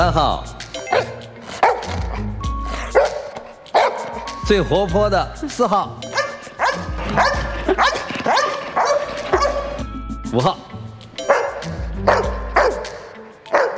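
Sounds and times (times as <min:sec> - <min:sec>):
speech: 0:00.0 - 0:01.1, 0:04.5 - 0:06.2, 0:07.1 - 0:08.4, 0:10.3 - 0:10.6
dog barking: 0:00.9 - 0:02.0, 0:02.8 - 0:04.2, 0:06.1 - 0:09.8, 0:11.2 - 0:13.7.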